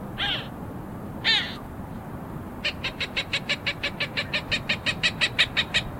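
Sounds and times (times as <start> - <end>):
Accipiter cooperii Cooper's hawk calling with squeals and kek notes: 0.2 - 0.5, 1.2 - 1.7, 2.6 - 5.9.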